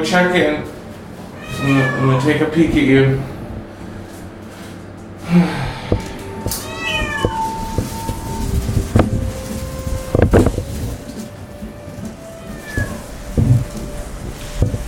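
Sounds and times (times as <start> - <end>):
speech: 0.0 - 0.8, 1.5 - 3.3, 5.3 - 6.7
low mechanical rumble: 0.0 - 14.8
cat meowing loudly: 1.3 - 2.4, 6.2 - 8.6, 12.4 - 13.0.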